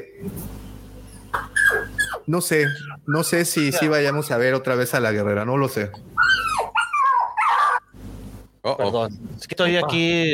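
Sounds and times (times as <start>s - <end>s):
dog whimpering and yelping: 1.4s - 3.9s, 6.2s - 7.9s
speech: 2.3s - 6.1s, 8.7s - 10.3s.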